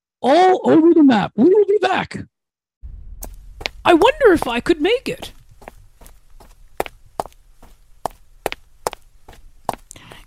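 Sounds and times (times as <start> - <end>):
speech: 0.2 - 2.3, 3.8 - 5.4
low rumble: 2.8 - 10.2
footsteps of a person walking home on a hard surface: 3.2 - 10.2.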